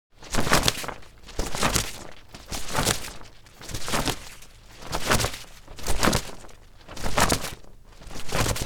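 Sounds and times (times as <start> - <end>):
umbrella flapping and shaking: 0.1 - 8.6.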